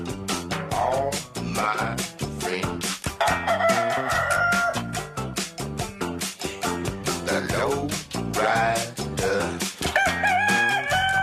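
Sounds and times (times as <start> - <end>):
upbeat music with bouncing bass line and punchy drums: 0.0 - 11.2
rooster crowing: 3.2 - 5.1, 9.9 - 11.2.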